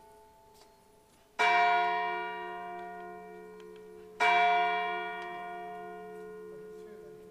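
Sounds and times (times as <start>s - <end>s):
church bell striking the hour: 1.4s - 7.3s.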